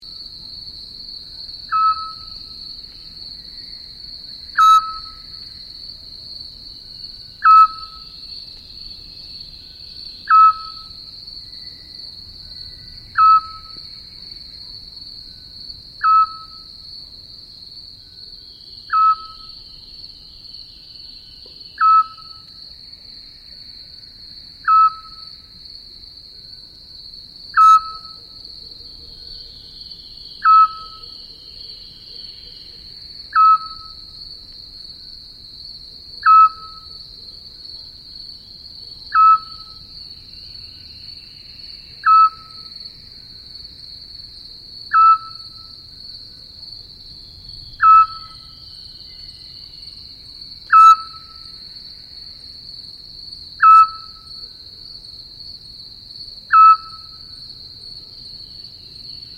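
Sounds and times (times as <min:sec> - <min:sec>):
scops owl calling: 0:01.7 - 0:02.4, 0:04.6 - 0:05.2, 0:07.4 - 0:08.1, 0:10.3 - 0:10.9, 0:13.2 - 0:13.7, 0:16.0 - 0:16.6, 0:18.9 - 0:19.5, 0:21.8 - 0:22.4, 0:24.6 - 0:25.2, 0:27.6 - 0:28.2, 0:30.4 - 0:31.1, 0:33.3 - 0:34.0, 0:36.2 - 0:36.9, 0:39.1 - 0:39.8, 0:42.0 - 0:42.6, 0:44.9 - 0:45.5, 0:47.8 - 0:48.5, 0:50.7 - 0:51.4, 0:53.6 - 0:54.2, 0:56.5 - 0:57.0.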